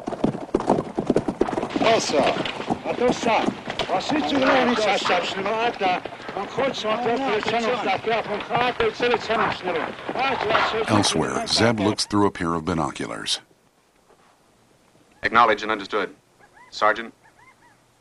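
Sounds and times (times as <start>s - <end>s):
large group of horses galloping with riders: 0.0s - 13.4s
voices calling over the stampede: 1.8s - 13.4s, 15.1s - 17.8s
speech: 1.9s - 13.5s, 15.2s - 17.2s.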